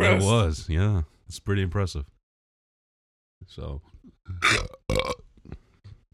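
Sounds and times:
speech: 0:00.1 - 0:02.2, 0:03.5 - 0:05.6
short underwhelming burp: 0:04.3 - 0:05.2.

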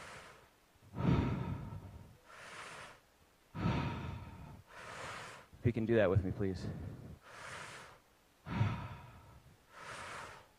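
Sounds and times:
deep cyclical breathing in and out through the mouth: 0:00.0 - 0:10.5
speech: 0:05.6 - 0:07.0.

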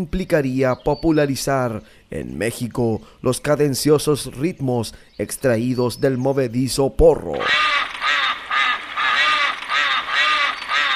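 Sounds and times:
speech: 0:00.0 - 0:07.7
duck quacking: 0:07.4 - 0:10.9.

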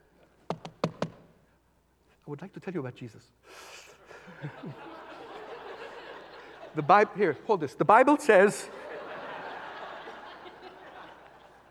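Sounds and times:
knocking on a door: 0:00.5 - 0:01.3
speech: 0:02.3 - 0:04.9, 0:06.8 - 0:08.8
laughter: 0:04.0 - 0:07.8, 0:08.4 - 0:11.7.

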